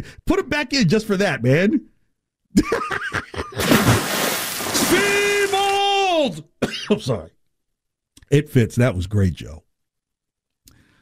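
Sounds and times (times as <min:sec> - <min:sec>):
speech: 0:00.0 - 0:01.9, 0:04.9 - 0:05.3, 0:06.2 - 0:07.4, 0:08.3 - 0:09.6
snickering laughter: 0:02.6 - 0:03.7
loud watery splash and sloshing: 0:03.6 - 0:05.8.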